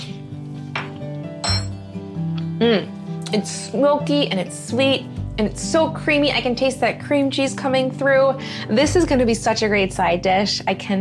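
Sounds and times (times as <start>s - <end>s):
spoon clinking against a bowl while mixing mashed charred corn: 0.8s - 1.8s
speech: 2.6s - 10.9s.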